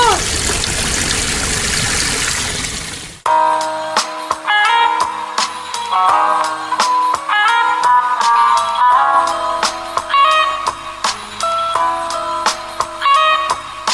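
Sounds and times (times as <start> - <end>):
water gushing from a hose onto a fire: 0.0 - 3.2
music with sharp percussive hits: 3.3 - 13.9.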